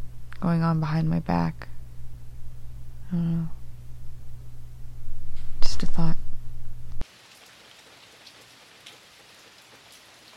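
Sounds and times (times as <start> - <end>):
low heavy droning sound: 0.0 - 5.3
speech: 0.4 - 1.7, 3.1 - 3.6, 5.8 - 6.2
rain falling: 7.0 - 10.3.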